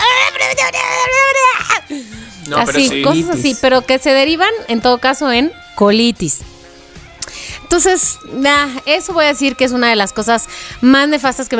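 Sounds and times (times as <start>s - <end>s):
person imitating crying with wailing sobs: 0.5s - 1.9s, 2.6s - 3.6s
speech: 0.6s - 6.5s, 7.7s - 11.5s.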